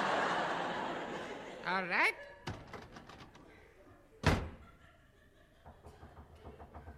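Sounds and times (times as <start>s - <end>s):
laughter: 0.0s - 2.5s, 3.5s - 6.9s
speech: 1.7s - 2.4s
knock on a wooden door: 5.6s - 6.9s.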